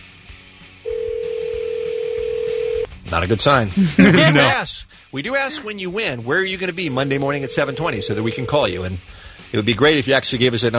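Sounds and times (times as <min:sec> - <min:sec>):
telephone ringback tone of an outgoing call: 0:00.9 - 0:02.9, 0:07.3 - 0:08.7
speech: 0:03.1 - 0:10.7
laughter: 0:03.7 - 0:04.8, 0:05.4 - 0:05.8.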